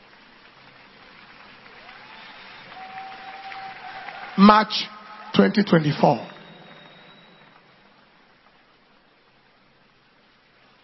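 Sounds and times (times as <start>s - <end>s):
steady rain pouring: 0.0s - 10.8s
speech: 4.4s - 6.3s
faint thin whistle-like tone: 6.0s - 7.9s.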